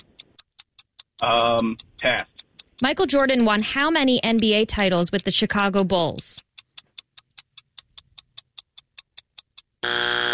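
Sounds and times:
countdown timer ticking: 0.0 - 10.3
speech: 1.2 - 6.5
quiz-game wrong-answer buzzer: 9.8 - 10.3.

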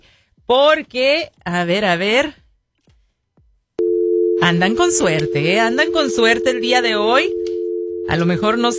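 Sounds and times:
speech: 0.5 - 2.4, 4.4 - 7.4, 8.1 - 8.7
telephone line busy tone while placing a call: 3.8 - 8.7.

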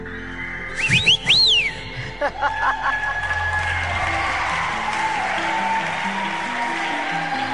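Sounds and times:
several people whistling in a room: 0.7 - 2.1
laughter: 0.8 - 7.5.

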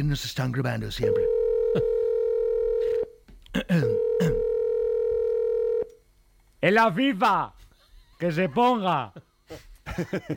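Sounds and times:
speech: 0.0 - 2.0, 3.6 - 4.4, 6.6 - 7.6, 8.2 - 10.3
telephone dial tone: 1.3 - 3.1, 4.0 - 5.9.

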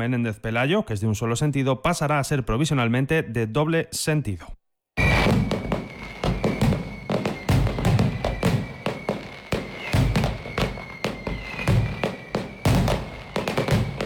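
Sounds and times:
speech: 0.0 - 4.6
crowd-like background: 5.0 - 14.0
fireworks display booming explosions and sharp cracks: 5.0 - 14.0
steady whistling tone: 5.0 - 14.0.

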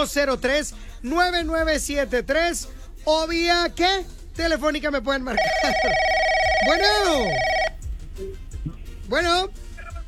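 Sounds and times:
speech: 0.0 - 7.5, 9.1 - 9.6
electronic telephone ring: 5.4 - 7.9.

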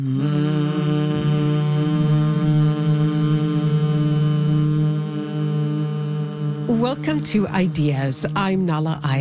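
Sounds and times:
speech: 0.0 - 0.6, 7.0 - 9.1
group of people humming together: 0.0 - 9.1.

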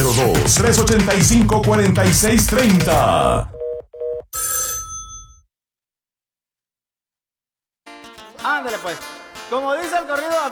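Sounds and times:
busy music with voices: 0.0 - 3.5, 7.9 - 10.5
speech: 0.5 - 3.6, 8.6 - 10.5
telephone ringing with electronic trill: 3.6 - 5.4.

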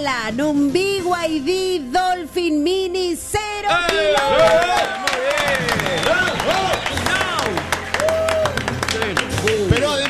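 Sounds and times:
speech: 0.0 - 7.6
excited shouting and cheering voices: 3.7 - 10.0
dense crowd applause: 3.8 - 10.0.

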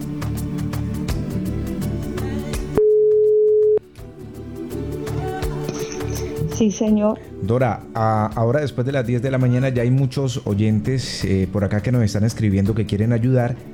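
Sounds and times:
music: 0.0 - 13.7
telephone beep while redialing a dropped call: 2.8 - 3.8
speech: 6.6 - 13.7.

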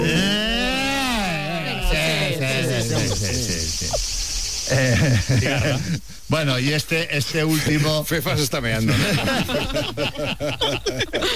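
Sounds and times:
laughter: 0.0 - 3.6, 4.7 - 6.1, 7.5 - 11.3
warbling voice-like tones sliding in pitch: 0.0 - 4.0
cricket chirping: 0.0 - 11.3
speech: 4.7 - 11.3.

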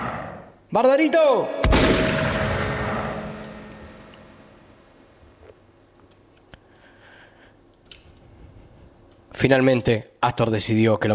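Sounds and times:
speech: 0.7 - 1.9, 9.4 - 11.1
carbine shot fired into the air echoing: 1.6 - 4.7.

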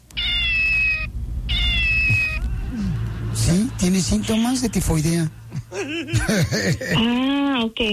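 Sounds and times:
low rumble: 0.0 - 7.9
cat meowing in long drawn-out cries: 0.1 - 2.6
laughter: 2.4 - 7.0
speech: 3.5 - 7.9.

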